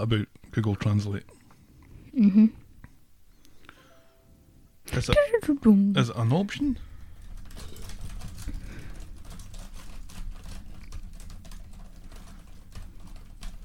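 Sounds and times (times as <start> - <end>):
speech: 0.0 - 1.4, 2.1 - 2.6, 4.9 - 6.9
low hum: 0.0 - 13.6
keyboard typing: 6.6 - 13.6.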